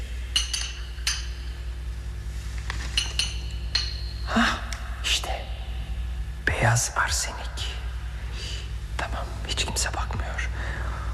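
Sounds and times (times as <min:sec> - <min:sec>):
steady low hum: 0:00.0 - 0:11.1
glass bottles clinking in a poison cabinet: 0:00.3 - 0:01.6, 0:02.8 - 0:04.4
speech: 0:06.6 - 0:07.5, 0:09.8 - 0:10.5.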